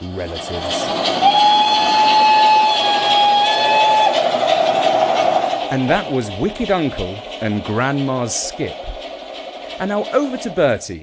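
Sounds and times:
steam train hissing steam and engine noise: 0.0s - 11.0s
speech: 0.2s - 1.2s, 5.7s - 8.9s, 9.8s - 11.0s
vintage steam train whistle: 1.2s - 4.9s.

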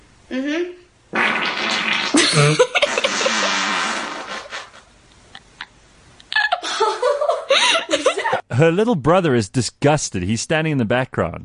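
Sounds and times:
speech: 0.3s - 0.8s, 8.6s - 11.4s
girl farting: 0.3s - 4.9s
laughter: 2.2s - 3.5s, 6.3s - 8.4s.

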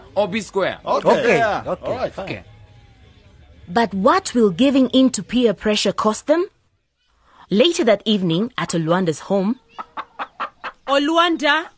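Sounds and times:
speech: 0.2s - 2.5s, 3.7s - 6.5s, 7.5s - 10.0s, 10.9s - 11.7s
chickens clucking: 9.6s - 11.0s.

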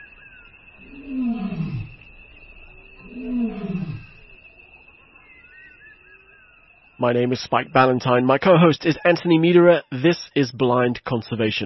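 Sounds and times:
lion roaring: 0.8s - 2.0s, 3.0s - 4.2s
speech: 7.0s - 11.6s.

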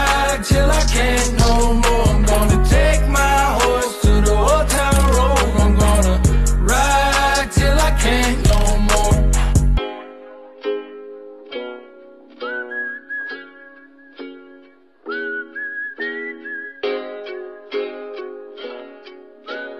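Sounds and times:
person whistling a tune in long steady notes: 0.0s - 9.7s, 12.4s - 17.8s, 19.5s - 19.7s
plucked strummed music with regular beats: 0.0s - 19.7s.

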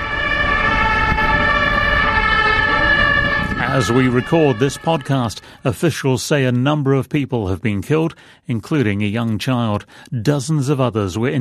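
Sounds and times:
low vehicle rumble: 0.0s - 5.8s
ambulance sirens blaring: 0.0s - 6.1s
speech: 3.8s - 11.3s.

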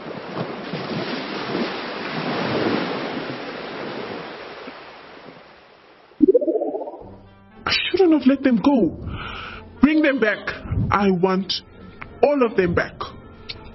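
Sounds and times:
ocean waves breaking on a shore: 0.0s - 7.0s
short tonal sound: 6.2s - 7.0s
speech: 8.1s - 13.1s.

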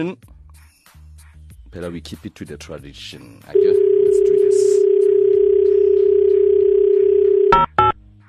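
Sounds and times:
speech: 0.0s - 0.3s, 1.7s - 5.1s
telephone line tone: 3.6s - 7.8s.

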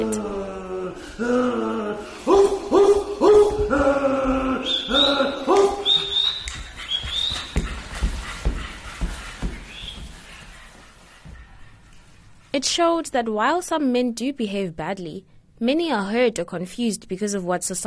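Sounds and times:
men imitating dogs with rising whiny howls: 0.0s - 6.0s
men imitating dogs barking in a stage play: 0.0s - 7.3s
speech: 12.7s - 17.8s.

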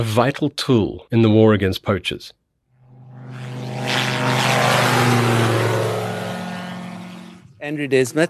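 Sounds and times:
speech: 0.0s - 2.4s, 7.6s - 8.2s
single-engine open-cockpit microlight aircraft engine and propeller droning at an airfield: 2.8s - 8.2s.

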